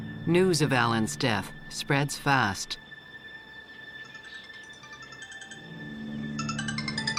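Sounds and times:
speech: 0.3 - 2.9
telephone ringing with a bright electronic ringtone: 4.3 - 7.1.

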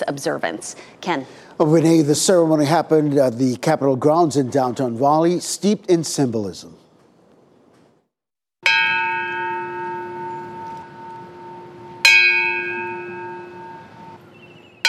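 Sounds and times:
speech: 0.0 - 6.8
single large memorial bell tolling: 8.6 - 14.8.

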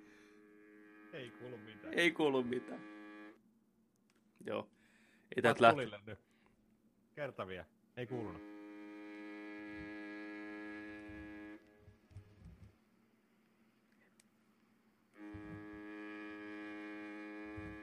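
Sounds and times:
foghorn blasts: 0.0 - 3.4, 8.0 - 12.1, 15.2 - 17.8
speech: 1.2 - 3.0, 4.4 - 6.3, 7.2 - 8.5.

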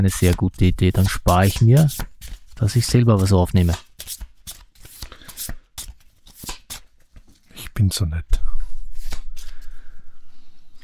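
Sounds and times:
speech: 0.0 - 4.3, 7.8 - 8.4
playing cards being shuffled: 0.0 - 6.8.

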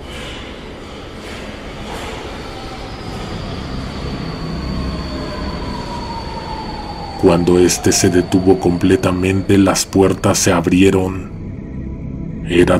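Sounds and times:
subway train wheel squeals: 0.0 - 9.6
subway train arriving at platform: 0.0 - 12.7
speech: 7.2 - 11.3, 12.5 - 12.7.

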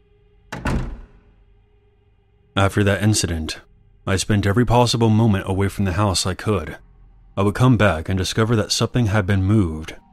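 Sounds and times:
door shutting with a heavy thunk against the frame: 0.5 - 1.2
speech: 2.6 - 10.0.

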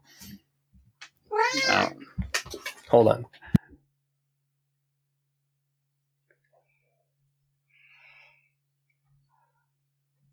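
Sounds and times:
cat meowing: 1.3 - 2.1
faint soft noises: 1.3 - 3.7
speech: 2.9 - 3.4.

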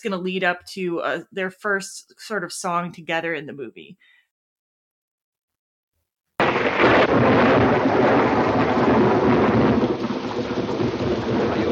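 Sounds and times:
speech: 0.0 - 4.2
heavy rain: 6.4 - 11.7
thunder rumbling: 6.4 - 11.7.

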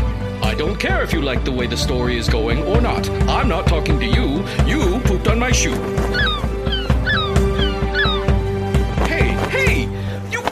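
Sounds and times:
speech: 0.6 - 6.4
bird squawking in harsh downward-sliding cries: 5.5 - 9.8.

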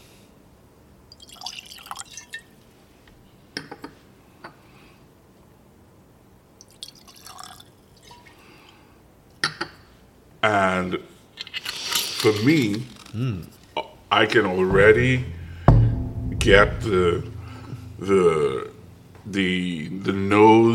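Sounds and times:
blended whisky pouring from a screw-top bottle into a glass: 1.1 - 2.5, 6.6 - 8.4
speech: 10.4 - 11.1, 12.2 - 15.4, 16.4 - 17.3, 18.0 - 18.7, 19.3 - 20.7.

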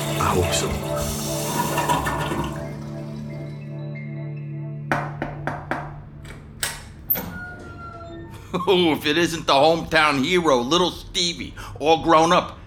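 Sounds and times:
toilet cistern refilling gurgles: 0.0 - 3.7
toilet flushing: 0.0 - 3.8
speech: 0.3 - 2.1, 8.5 - 12.6
plumbing clanks and knocks: 4.9 - 8.0.

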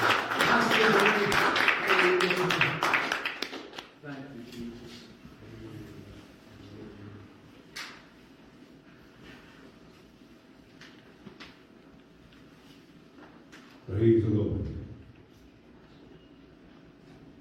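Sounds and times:
crowd clapping: 0.0 - 4.0.

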